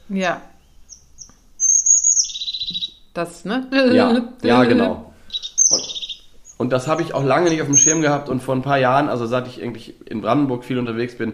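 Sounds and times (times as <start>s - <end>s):
speech: 0.1s - 0.5s, 3.2s - 5.1s, 5.7s - 5.9s, 6.6s - 11.3s
crested tit giving high notes and a rolling purring trill: 0.8s - 2.9s, 5.3s - 8.0s
laughter: 3.9s - 5.0s.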